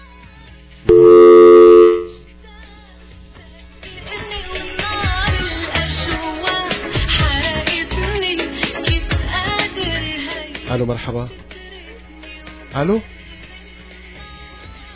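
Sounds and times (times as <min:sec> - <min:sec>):
telephone tone of a disconnected call: 0:00.9 - 0:02.2
speech: 0:10.9 - 0:11.5, 0:12.7 - 0:13.2.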